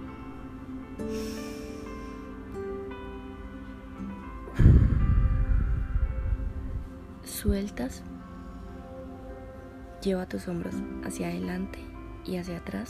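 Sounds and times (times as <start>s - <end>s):
soft sustained musical tones: 0.0s - 12.8s
slow deep breath in and long airy exhale: 1.0s - 2.5s, 8.2s - 9.2s
speech: 7.4s - 8.1s, 10.0s - 12.8s.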